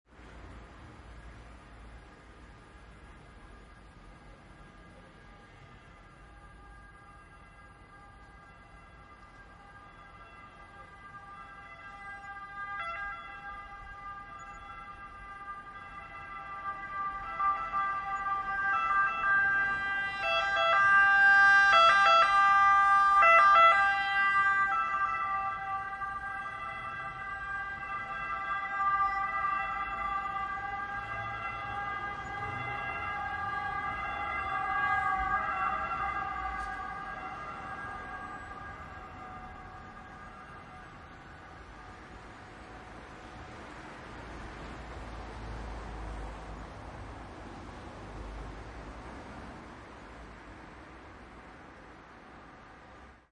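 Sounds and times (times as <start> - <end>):
ambulance siren: 1.0 - 53.3.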